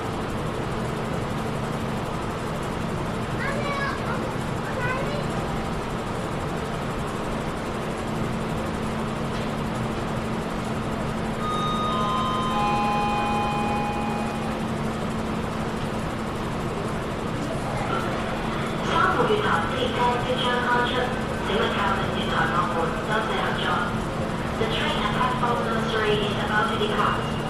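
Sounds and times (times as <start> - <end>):
train idling at a platform with a low hum: 0.0 - 27.4
electronic chime tones: 11.4 - 14.5.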